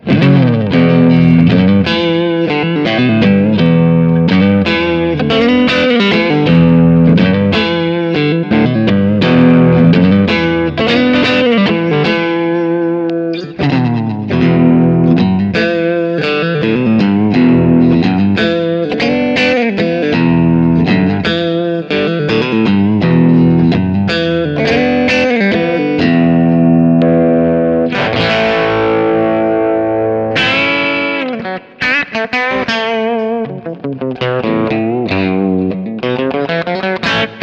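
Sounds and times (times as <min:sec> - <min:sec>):
electric guitar with split humbucker neck to bridge crunch: 0:00.0 - 0:37.4.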